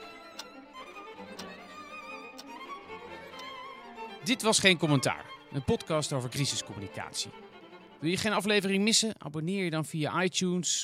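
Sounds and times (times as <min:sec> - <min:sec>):
soft sustained music: 0:00.0 - 0:09.0
clock ticking: 0:00.3 - 0:00.5, 0:02.3 - 0:02.6
speech: 0:04.2 - 0:10.8.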